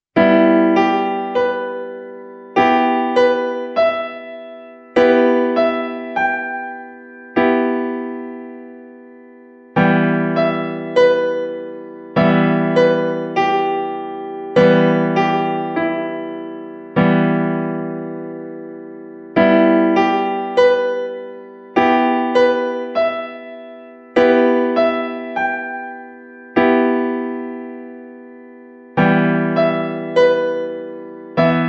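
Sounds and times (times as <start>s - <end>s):
E minor piano keyboard chord: 0.2s - 31.6s.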